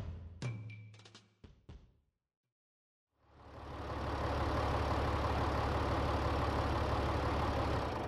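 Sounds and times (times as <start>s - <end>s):
tractor engine driving briskly along a road: 3.4s - 8.0s.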